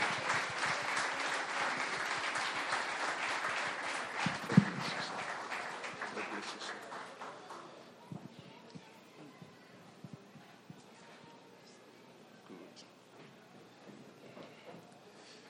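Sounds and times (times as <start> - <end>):
crowd applauding: 0.0 - 7.8.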